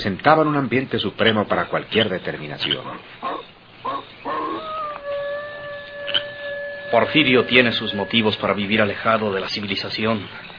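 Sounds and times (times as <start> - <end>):
speech: 0.0 - 3.4, 6.9 - 10.5
animals howling among mountain cliffs: 2.7 - 9.9.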